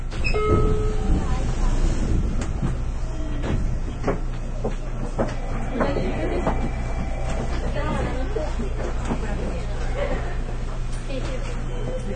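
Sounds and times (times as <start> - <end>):
rattles and clunks over the rails: 0.1 - 11.4
running gear rumble inside a moving local electric train: 0.1 - 11.7
voices speaking inside a train: 1.1 - 12.1.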